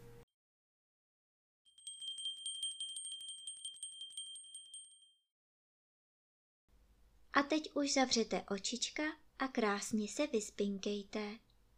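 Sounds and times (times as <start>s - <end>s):
small bell ringing: 1.7s - 5.3s
speech: 7.4s - 11.4s.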